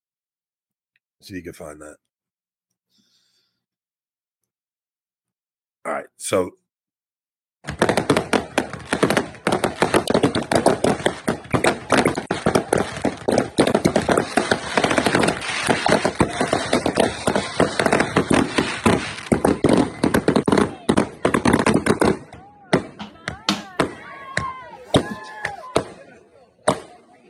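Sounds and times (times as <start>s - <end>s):
speech: 1.2s - 2.1s, 5.9s - 6.6s
fireworks show exploding with loud bangs and crackling bursts: 7.6s - 27.2s
people cheering: 8.0s - 27.2s.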